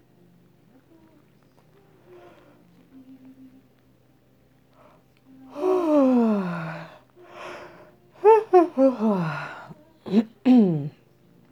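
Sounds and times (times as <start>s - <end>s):
person yawning: 5.6s - 10.9s.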